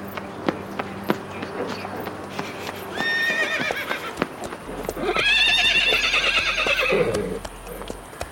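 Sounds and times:
horse hooves clip-clopping in a stable: 0.0s - 8.2s
horses whinnying in a stable: 2.9s - 7.8s.

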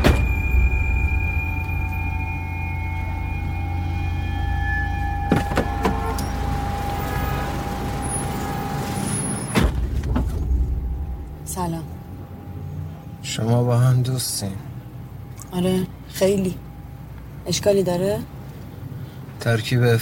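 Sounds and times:
car doors opening and closing: 0.0s - 1.8s, 5.2s - 10.9s
idling vehicle engine hum: 0.0s - 19.4s
speech: 15.5s - 16.6s, 17.5s - 18.4s, 19.4s - 20.0s.

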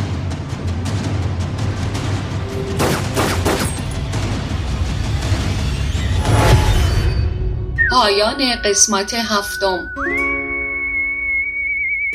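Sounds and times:
dense rumbling film soundtrack on a television: 0.0s - 12.0s
heavy blast from a film on a television: 1.9s - 8.6s
movie gunfire from a film playing on a television: 2.6s - 4.0s
speech: 8.0s - 10.2s.

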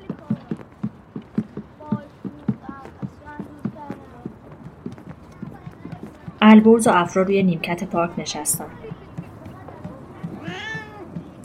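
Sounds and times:
people talking quietly: 0.0s - 11.4s
soft low thumps: 0.0s - 11.4s
speech: 6.5s - 8.8s
cat meowing: 10.4s - 11.1s.

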